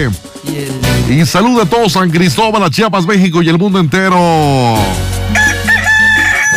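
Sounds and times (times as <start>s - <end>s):
speech: 0.0s - 5.5s
rooster in Chiapas Mexico crowing: 5.3s - 6.5s.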